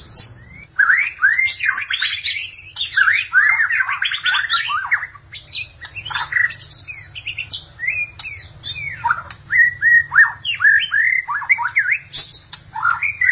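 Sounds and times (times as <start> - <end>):
low hum: 0.0 - 0.8
magpie-robin or shama singing fast varied song: 0.0 - 13.2.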